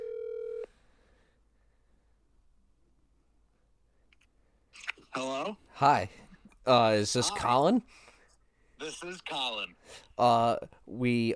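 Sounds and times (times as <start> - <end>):
steady electronic telephone tone: 0.0 - 0.7
speech: 5.2 - 8.0, 8.8 - 11.3.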